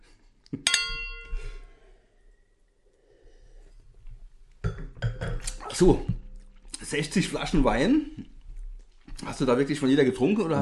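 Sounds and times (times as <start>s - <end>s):
wine glasses clinking in a toast: 0.7s - 1.6s
speech: 5.8s - 6.2s, 6.9s - 8.3s, 9.3s - 10.6s.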